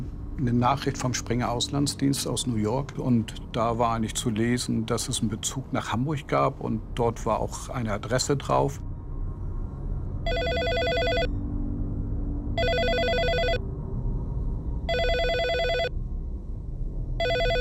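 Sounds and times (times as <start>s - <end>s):
low rumbling background: 0.0s - 17.5s
speech: 0.4s - 8.9s
telephone ringing: 10.3s - 11.3s, 12.6s - 13.6s, 14.9s - 15.9s, 17.2s - 17.5s.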